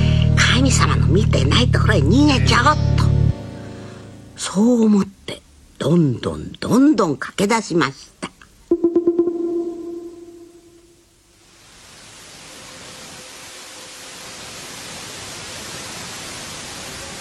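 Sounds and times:
speech: 0:01.1 - 0:03.2, 0:04.4 - 0:08.1
low wavering horn-like tone: 0:08.7 - 0:11.1.

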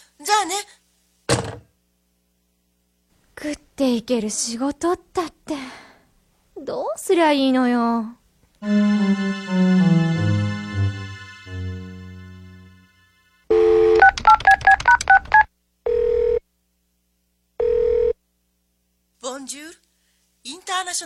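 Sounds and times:
speech: 0:00.2 - 0:00.8, 0:03.4 - 0:05.8, 0:06.6 - 0:10.2, 0:20.8 - 0:21.0
falling musical phrase: 0:08.6 - 0:13.4
telephone ringing tones on the line: 0:13.5 - 0:16.4, 0:17.6 - 0:18.2.

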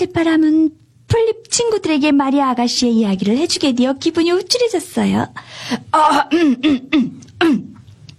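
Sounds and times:
speech: 0:00.0 - 0:07.7
voice imitating an adult clearing its throat and coughing: 0:06.0 - 0:07.8.

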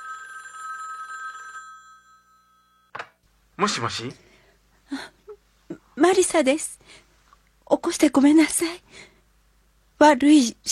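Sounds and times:
telephone bell ringing: 0:00.0 - 0:02.9
speech: 0:03.6 - 0:04.3, 0:06.0 - 0:07.0, 0:07.7 - 0:09.1, 0:10.0 - 0:10.7.

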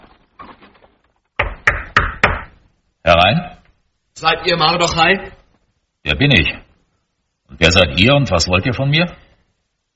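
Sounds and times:
royal palace guard knocking on the door of a house: 0:01.4 - 0:02.6
speech: 0:03.1 - 0:03.6, 0:04.2 - 0:05.4, 0:06.0 - 0:06.6, 0:07.5 - 0:09.2.

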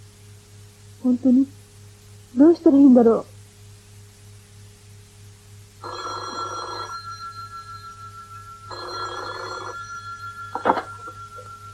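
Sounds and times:
speech: 0:01.0 - 0:01.6, 0:02.3 - 0:03.3
telephone ringing in long buzzing bursts: 0:05.8 - 0:11.7
steady low hum: 0:05.9 - 0:11.7.

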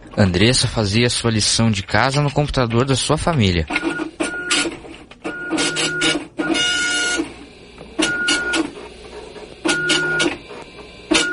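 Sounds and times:
speech: 0:00.2 - 0:03.9
computer printer printing homework pages: 0:02.1 - 0:11.3.

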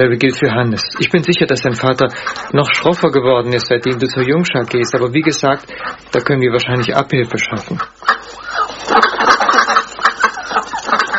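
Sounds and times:
speech: 0:00.0 - 0:09.3
ducks quacking: 0:00.0 - 0:11.1.

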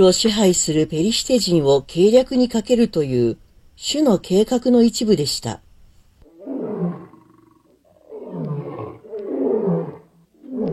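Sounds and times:
speech: 0:00.0 - 0:05.6
lion roaring: 0:06.2 - 0:10.7.

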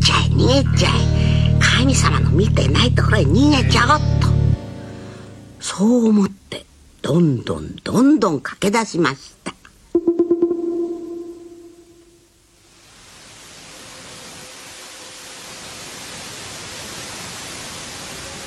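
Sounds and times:
speech: 0:00.5 - 0:01.0, 0:01.8 - 0:04.2, 0:05.7 - 0:09.6
ringing tone: 0:10.0 - 0:12.3.

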